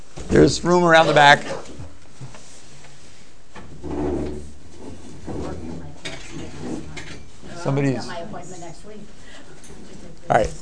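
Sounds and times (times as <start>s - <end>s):
faint room noise: 0.0s - 10.5s
speech: 0.3s - 1.7s, 7.7s - 8.2s, 10.3s - 10.5s
chairs dragged across a floor: 0.8s - 8.0s.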